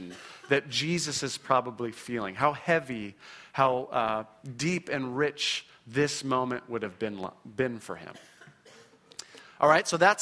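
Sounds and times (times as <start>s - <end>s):
audience member coughing: 0.0s - 0.5s, 8.1s - 9.1s
speech: 0.5s - 8.3s, 9.6s - 10.2s.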